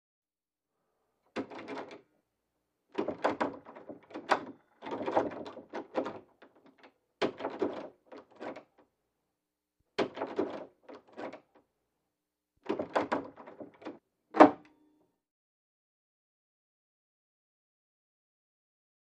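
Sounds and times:
door knob shaken and rattling: 1.4s - 2.0s, 2.9s - 8.8s, 10.0s - 11.6s, 12.6s - 14.0s.

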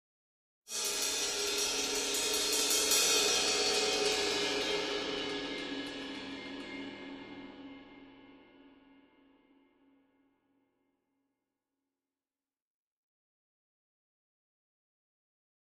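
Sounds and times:
single cymbal: 0.7s - 9.8s.

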